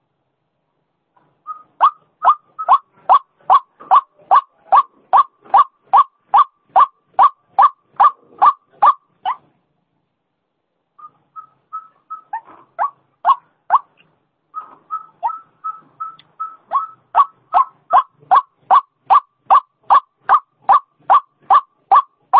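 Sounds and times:
female White-breasted waterhen calling with short harsh notes and softer hooting: 1.6s - 9.4s, 16.7s - 22.3s.

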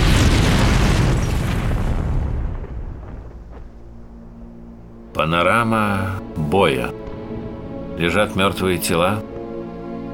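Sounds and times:
grenade thrown through a window exploding in a war film: 0.0s - 3.6s
speech: 5.2s - 7.0s, 8.0s - 9.3s.

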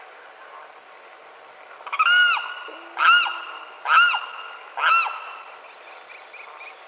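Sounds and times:
brief low hum: 0.0s - 6.1s
limpkin giving loud wailing calls, Aramus guarauna: 1.9s - 5.5s.

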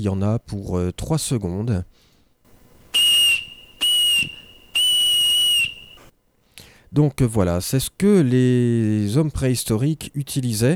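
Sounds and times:
speech: 0.0s - 2.1s, 6.9s - 10.7s
reconstructed prehistoric whistle made from reindeer phalanx bone: 2.6s - 6.1s.

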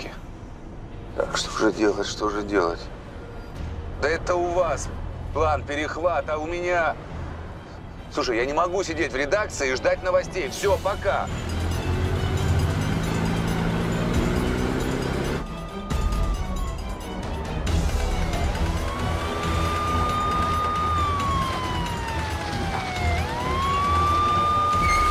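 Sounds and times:
steady rumble of militia cars arriving at a hangar: 0.0s - 25.0s
speech: 1.2s - 3.0s, 4.0s - 7.1s, 8.1s - 11.6s
police car sirens wailing as militia cars arrive at a hangar: 11.3s - 25.0s.

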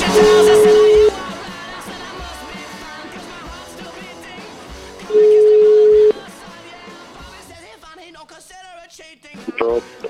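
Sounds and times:
ringback tone of an outgoing phone call: 0.1s - 1.2s, 5.1s - 6.2s, 9.6s - 10.0s.

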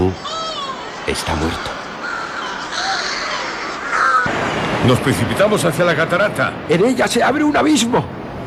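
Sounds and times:
speech: 0.0s - 0.3s, 1.0s - 1.8s, 4.8s - 8.2s
chorus of crow-like birds cawing harshly: 1.8s - 4.3s.

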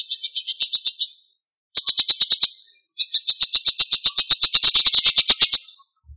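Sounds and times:
bird song of high pulsed notes in Indonesia: 0.0s - 6.1s.

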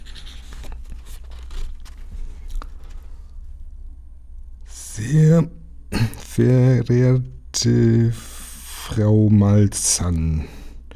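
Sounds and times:
envelope ripped open: 0.0s - 3.4s
letter paper rustling as it is unfolded: 0.0s - 3.9s
speech: 5.0s - 8.3s, 8.9s - 10.6s.

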